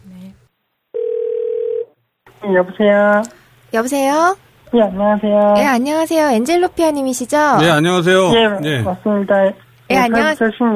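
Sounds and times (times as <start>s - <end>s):
telephone dial tone while placing a call: 1.0s - 2.0s
speech: 2.4s - 10.7s.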